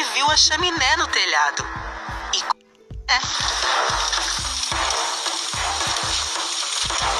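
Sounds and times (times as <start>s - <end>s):
speech: 0.2s - 2.5s, 3.1s - 4.2s
water pouring into a large pot: 3.2s - 7.1s.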